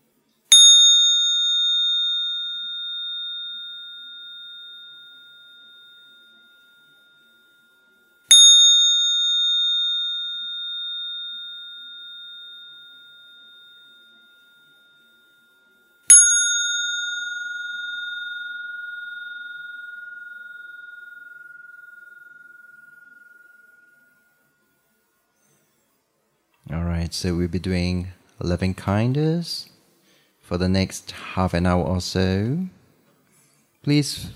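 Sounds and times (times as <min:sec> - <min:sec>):
meditation bell ringing: 0:00.5 - 0:26.0
speech: 0:27.0 - 0:29.7, 0:30.5 - 0:32.8, 0:33.8 - 0:34.3.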